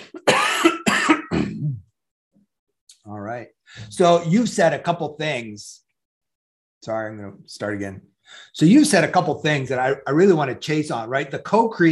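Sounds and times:
person coughing: 0:00.0 - 0:01.9
speech: 0:03.4 - 0:05.8, 0:06.8 - 0:11.9.

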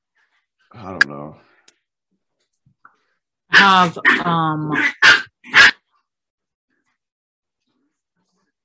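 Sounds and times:
speech: 0:00.7 - 0:01.6, 0:03.6 - 0:05.2
puppy barking in high-pitched yelps and yips: 0:03.5 - 0:05.9.

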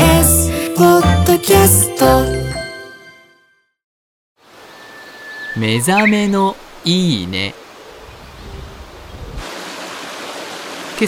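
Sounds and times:
speech: 0:00.8 - 0:02.4, 0:05.6 - 0:07.6
river stream flowing: 0:04.4 - 0:06.9, 0:09.4 - 0:11.0.

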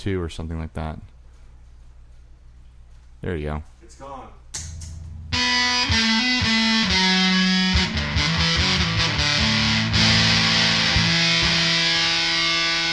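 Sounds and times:
speech: 0:00.0 - 0:01.1, 0:03.2 - 0:04.4
electric guitar through Big Muff fuzz pedal playing a riff: 0:04.6 - 0:12.9.

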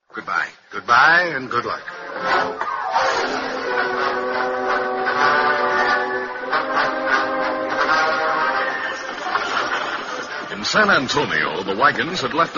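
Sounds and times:
speech: 0:00.2 - 0:03.6, 0:10.7 - 0:12.5
train rumbling: 0:01.6 - 0:12.5
long steady loud train whistle blast: 0:02.3 - 0:10.3.

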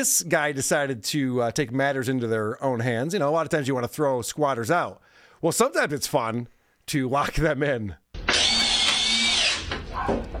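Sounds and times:
speech: 0:00.0 - 0:08.4, 0:10.1 - 0:10.3
power drill driving into a 2x4 across a basement door: 0:08.2 - 0:10.2.

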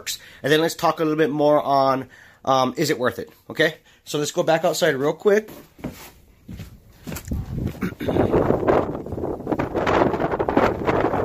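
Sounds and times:
speech: 0:00.0 - 0:06.7
movement sounds: 0:05.4 - 0:09.2
strong wind buffeting the microphone outdoors beside a wind turbine: 0:06.5 - 0:11.2.

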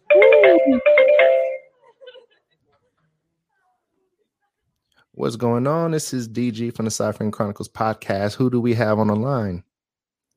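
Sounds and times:
melodic electronic phone ringtone for an incoming call: 0:00.0 - 0:01.7
speech: 0:00.7 - 0:01.0, 0:05.2 - 0:09.7
laughter: 0:01.7 - 0:03.0.

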